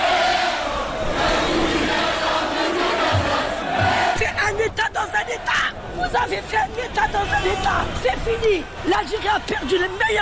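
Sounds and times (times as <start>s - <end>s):
protest crowd roaring and shouting at a rally for press freedom in Algiers: 0.0s - 10.1s
speech: 6.2s - 10.1s.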